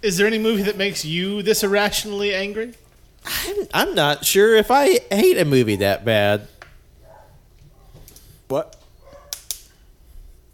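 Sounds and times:
speech: 0.0s - 6.5s, 8.5s - 8.8s
quiet hum: 0.0s - 10.5s
dogs barking: 7.0s - 8.0s, 9.0s - 9.4s.

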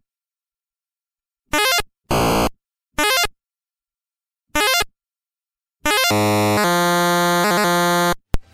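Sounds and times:
retro 8-bit video game electronic bleeps: 1.6s - 2.5s, 5.9s - 8.2s.

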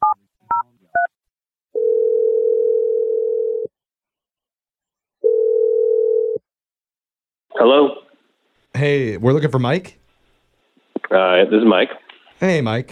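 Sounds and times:
steady telephone ringing tone: 1.8s - 3.7s, 5.2s - 6.4s
speech: 7.6s - 8.0s, 8.8s - 10.0s, 11.1s - 12.8s.

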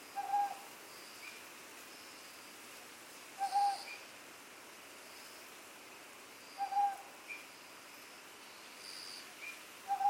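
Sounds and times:
owl hooting on Iriomote Island Okinawa Japan: 0.2s - 0.6s, 3.4s - 4.0s, 6.6s - 7.0s, 9.9s - 10.0s.

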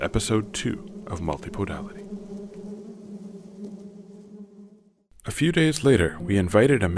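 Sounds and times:
speech: 0.0s - 2.0s, 5.3s - 6.9s
many honeybees buzzing at their hive in an orchard: 0.0s - 5.1s.

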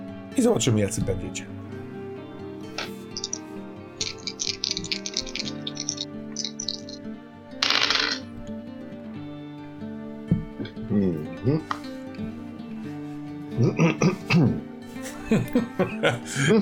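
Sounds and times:
music or ambient tones: 0.0s - 16.6s
speech: 0.4s - 1.6s, 16.0s - 16.6s
dice clattering and rolling: 4.0s - 7.0s, 7.6s - 8.2s
laughter: 15.0s - 16.6s.

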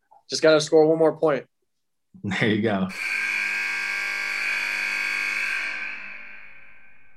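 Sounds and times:
speech: 0.3s - 1.5s, 2.2s - 3.2s
loud steady electronic segment transition buzzer: 2.9s - 7.1s.

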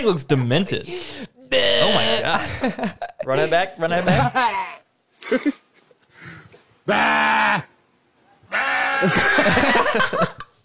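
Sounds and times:
speech: 0.0s - 5.6s, 6.9s - 7.7s, 9.0s - 10.3s
laughter: 1.6s - 5.7s, 9.0s - 10.6s
sheep bleating: 6.9s - 7.7s, 8.5s - 9.2s.

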